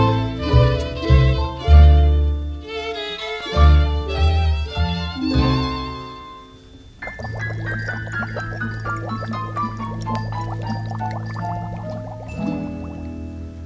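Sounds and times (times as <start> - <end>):
sustained musical tones: 0.0 - 13.6
water trickling and bubbling in a small stream: 7.0 - 13.2.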